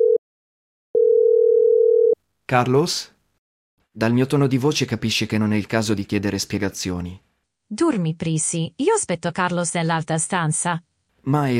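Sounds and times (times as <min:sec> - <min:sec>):
telephone dial tone while a number is dialed: 0:01.0 - 0:02.2
speech: 0:02.5 - 0:03.2, 0:04.0 - 0:11.5.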